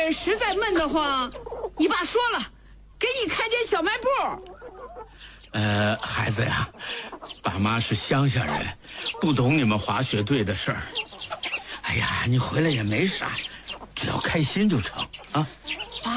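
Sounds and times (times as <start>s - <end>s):
chickens clucking: 0.0s - 2.4s, 3.4s - 16.1s
speech: 0.0s - 4.6s, 5.5s - 16.1s.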